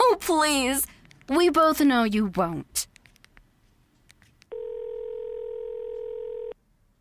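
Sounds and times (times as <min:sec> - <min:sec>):
speech: 0:00.3 - 0:02.9
quick clicks from a phone handset dialing a number: 0:04.5 - 0:06.6.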